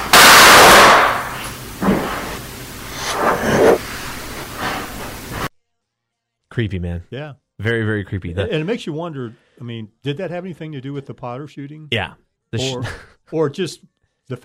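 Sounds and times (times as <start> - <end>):
loud sharp bang: 0.1 - 2.1
speech: 6.6 - 14.4.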